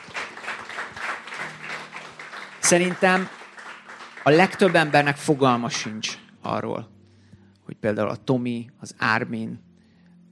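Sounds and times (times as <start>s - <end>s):
audience applause at a group gathering: 0.0s - 6.1s
speech: 2.7s - 3.4s, 4.2s - 7.0s, 7.8s - 9.7s.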